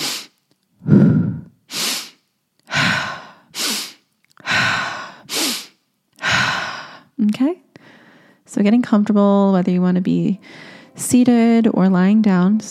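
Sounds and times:
slow breathing in through the nose and out through the mouth: 0.0s - 8.5s, 10.4s - 11.0s
speech: 7.2s - 7.7s, 8.5s - 12.7s.

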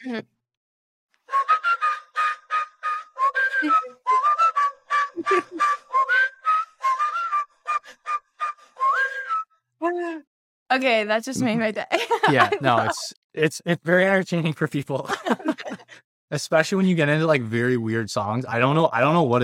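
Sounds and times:
speech: 0.0s - 0.4s, 10.8s - 15.7s, 16.3s - 19.4s
person whistling a tune: 1.3s - 9.5s
laughter: 5.2s - 5.8s, 11.4s - 18.0s.

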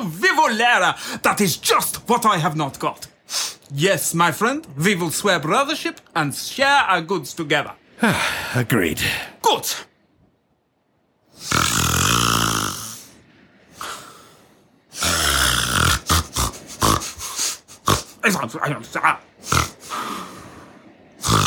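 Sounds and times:
speech: 0.0s - 9.9s, 11.4s - 11.6s, 18.2s - 19.6s
man snoring loudly with snorting breaths and grunts: 11.4s - 13.1s, 15.0s - 18.2s, 19.5s - 20.0s, 21.2s - 21.4s.

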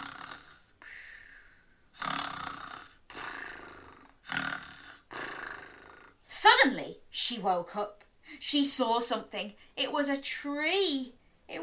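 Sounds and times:
several children making exaggerated snoring noises: 0.0s - 0.8s, 2.0s - 6.2s
speech: 6.6s - 11.6s.

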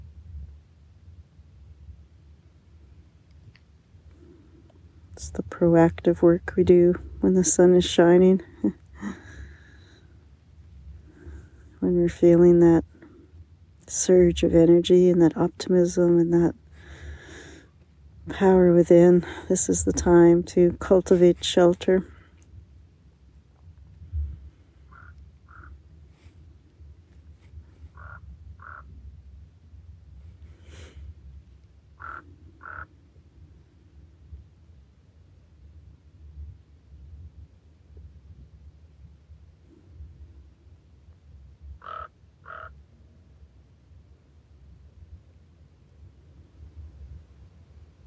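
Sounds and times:
steady low rumble of outdoor ambience: 0.0s - 48.0s
speech: 5.2s - 9.2s, 12.0s - 12.9s, 13.9s - 16.6s, 18.3s - 22.1s
raven croaking after a storm: 24.8s - 25.8s, 27.9s - 29.0s, 32.0s - 33.0s, 41.8s - 42.8s.

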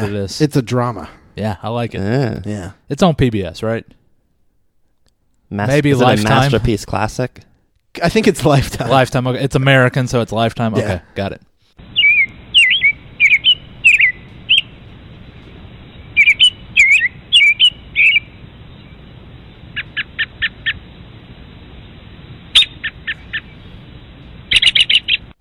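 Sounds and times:
speech: 0.0s - 4.0s, 5.5s - 11.5s
bird tweeting sound effect: 11.9s - 14.8s, 16.1s - 18.4s, 24.5s - 25.3s.

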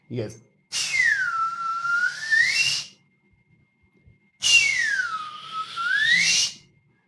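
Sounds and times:
speech: 0.1s - 0.5s
man whistling bird-like phrases: 0.7s - 3.0s, 4.4s - 6.7s.

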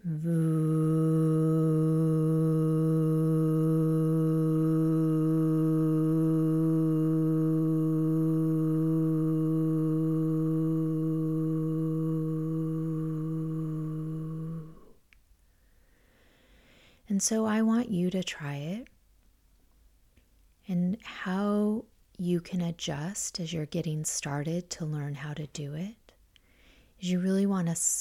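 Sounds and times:
speech: 0.0s - 0.7s, 17.2s - 18.9s, 20.7s - 26.0s, 27.0s - 27.9s
deep buzzing vocal hum at the back of the throat imitating a lighthouse foghorn: 0.0s - 15.1s.

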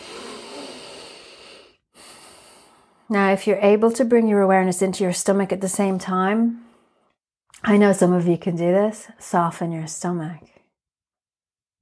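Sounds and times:
group breathing together during a yoga exercise: 0.0s - 3.1s
speech: 3.1s - 6.7s, 7.6s - 10.5s.

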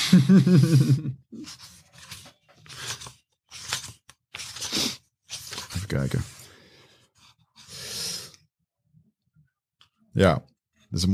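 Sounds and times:
laughter: 0.0s - 1.2s
speech: 0.1s - 1.6s, 5.9s - 6.4s, 10.2s - 11.1s
book pages being handled: 1.4s - 6.5s
paper scraping and crinkling: 1.4s - 6.5s.

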